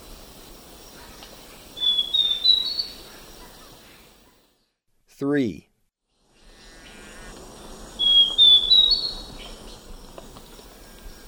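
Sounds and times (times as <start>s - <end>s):
background hiss: 0.0s - 11.2s
Zimmer's antbird song in eastern lowlands of South America: 0.8s - 4.1s, 6.4s - 9.8s
speech: 5.2s - 5.7s.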